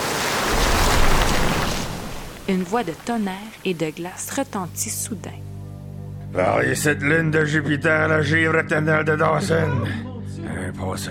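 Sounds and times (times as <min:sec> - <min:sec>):
angry river roaring with rough water: 0:00.0 - 0:04.0
speech: 0:02.5 - 0:05.5, 0:06.3 - 0:11.0.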